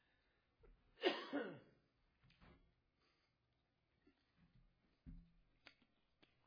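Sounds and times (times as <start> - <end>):
person giving a deliberate cough: 1.0 - 1.8.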